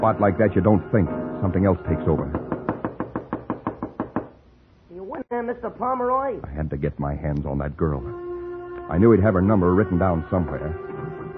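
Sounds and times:
speech: 0.0 - 2.4, 5.5 - 8.2, 8.9 - 10.9
heavy pounding knocks on a door: 2.3 - 4.3.

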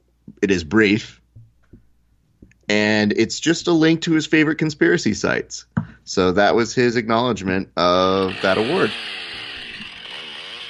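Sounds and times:
speech: 0.4 - 1.2, 2.7 - 9.2
chainsaw roaring at high revs: 7.9 - 10.6.

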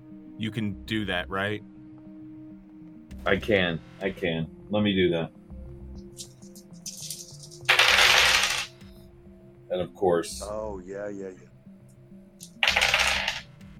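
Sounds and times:
soft music: 0.0 - 13.7
speech: 0.4 - 1.7, 3.2 - 5.4, 9.8 - 11.5
dice rolling on a hard table: 6.9 - 8.7, 12.4 - 13.4.

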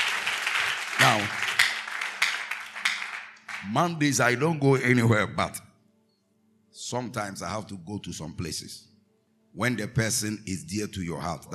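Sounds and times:
audience clapping hands: 0.0 - 4.2
speech: 1.0 - 1.4, 3.6 - 5.7, 6.9 - 8.9, 9.5 - 11.5.

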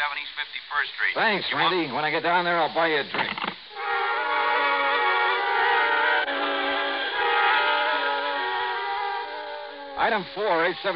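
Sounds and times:
speech: 0.1 - 3.5, 10.0 - 10.9
train whistle blowing: 3.7 - 10.9.

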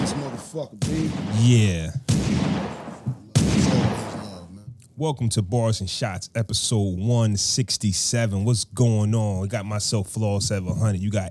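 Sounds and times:
gunfire barrage: 0.0 - 4.6
speech: 0.5 - 2.4, 5.0 - 11.2.

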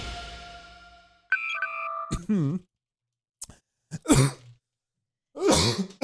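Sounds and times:
electronic beeping tones: 1.3 - 2.1
person coughing: 2.1 - 2.6, 3.9 - 4.5, 5.4 - 6.0.

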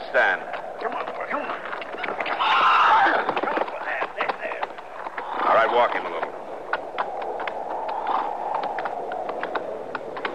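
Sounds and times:
speech: 0.1 - 0.6
hoof clatter and scuffling: 0.1 - 10.3
horse whinnying: 2.3 - 3.5.

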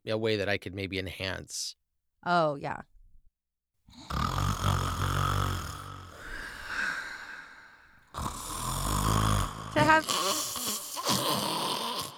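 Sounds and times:
speech: 0.0 - 2.9, 3.9 - 4.4, 9.8 - 10.4
person imitating a grandmother's loud rattling snore: 3.9 - 12.1.

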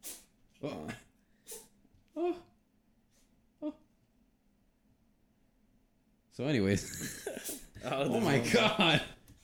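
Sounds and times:
pet sneezing: 0.0 - 0.3, 1.4 - 1.8
speech: 0.6 - 1.0, 6.4 - 9.2.

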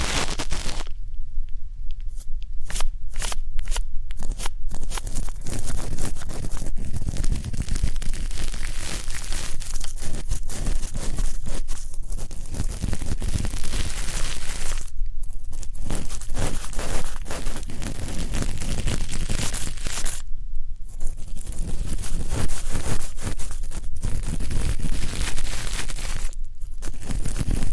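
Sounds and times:
dense crackling and scratching of ear cleaning: 0.0 - 1.0, 1.9 - 20.2, 20.8 - 27.7.

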